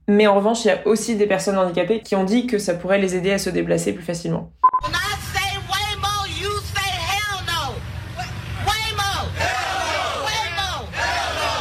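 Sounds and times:
speech: 0.1 - 5.0
low rumble of street traffic: 4.9 - 11.6
crowd protesting against autonomous cars chanting and shouting: 8.3 - 11.6.

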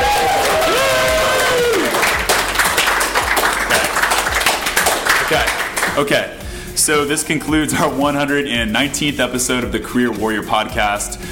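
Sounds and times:
audience cheering: 0.0 - 5.5
audience round of applause: 0.0 - 6.0
speech: 6.0 - 11.3.

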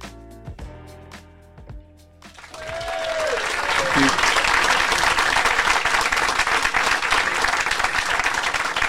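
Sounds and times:
large live festival audience applauding: 2.4 - 8.8.

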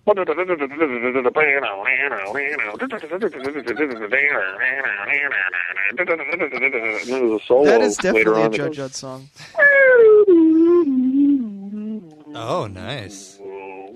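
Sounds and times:
speech: 0.0 - 9.9, 12.4 - 13.4
laughter: 2.3 - 5.1, 6.1 - 8.4
person humming a fast punchy punk guitar riff: 10.4 - 13.9.

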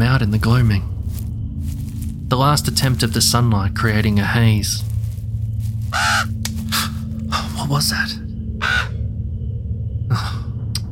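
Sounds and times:
steady low rumble: 0.0 - 10.9
speech: 0.2 - 0.9, 2.3 - 4.9, 7.7 - 8.2
bird giving harsh raspy calls: 5.9 - 7.2, 8.5 - 9.1.

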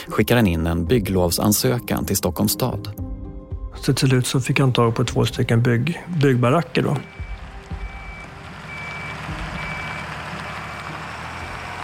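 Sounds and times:
speech: 0.1 - 3.0, 3.8 - 7.2
heavy trucks rumbling on the street outside Fryshuset in Stockholm: 4.1 - 11.8
repeating truck reversing beep: 7.0 - 10.2.

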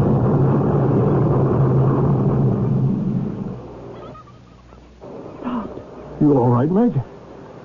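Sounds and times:
deep rumbling roar of shaking ground: 0.0 - 3.8
speech: 6.2 - 7.1.

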